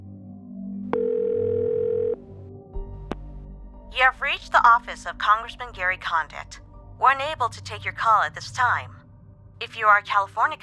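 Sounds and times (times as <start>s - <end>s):
telephone dial tone: 1.0s - 2.2s
speech: 4.0s - 9.0s, 9.6s - 10.6s.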